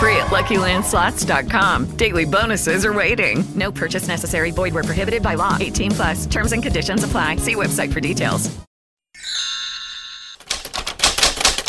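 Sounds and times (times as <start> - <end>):
speech: 0.3 - 8.7
typewriter bell ding: 10.4 - 11.6.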